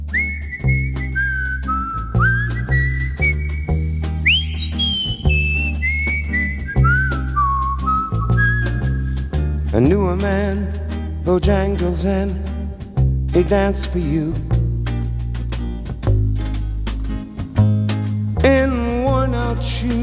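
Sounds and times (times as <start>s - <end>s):
clear whistled melody in a recorded song intro: 0.1s - 9.9s
steady bass-heavy band accompaniment with a regular beat: 0.1s - 11.1s, 14.4s - 18.5s
speech: 9.8s - 12.5s, 13.3s - 14.5s, 19.6s - 20.0s.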